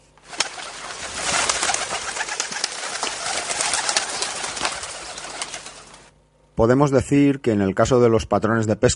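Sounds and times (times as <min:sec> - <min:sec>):
pigeon wing flutters: 0:00.0 - 0:06.1
flock of carrier pigeons cooing: 0:00.2 - 0:06.1
speech: 0:06.6 - 0:08.9.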